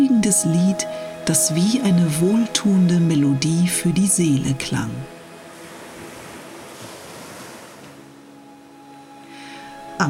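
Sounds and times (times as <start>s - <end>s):
speech: 0.2s - 5.1s
gentle waves breaking on a shore: 5.1s - 9.8s.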